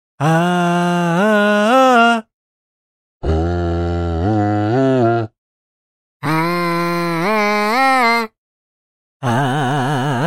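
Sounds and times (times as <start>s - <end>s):
processed vocal: 0.2s - 2.3s, 3.2s - 5.4s, 6.2s - 8.4s, 9.2s - 10.2s.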